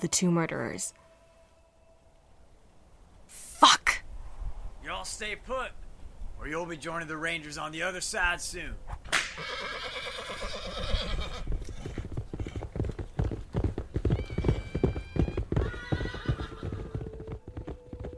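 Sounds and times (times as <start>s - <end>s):
speech: 0.0s - 1.1s, 4.9s - 5.8s, 6.4s - 10.4s
horses whinnying and neighing: 9.3s - 12.7s, 13.8s - 17.2s
horse hooves clopping while trotting and circling: 10.8s - 18.1s.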